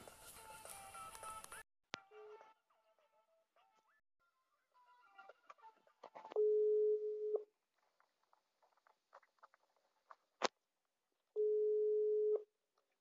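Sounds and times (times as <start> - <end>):
phone call tone beeps while dialing: 6.4 - 7.4, 11.4 - 12.4.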